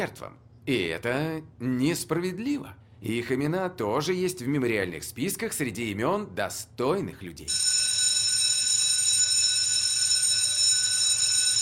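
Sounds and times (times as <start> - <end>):
speech: 0.0 - 7.9
electric school bell ringing for the start of class: 7.5 - 11.6.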